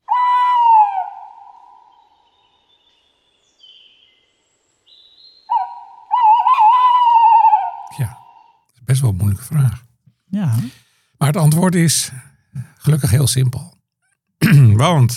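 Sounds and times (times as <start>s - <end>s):
tawny owl hooting: 0.1s - 2.2s, 5.5s - 8.6s
speech: 9.0s - 12.3s, 12.9s - 13.8s, 14.5s - 15.1s.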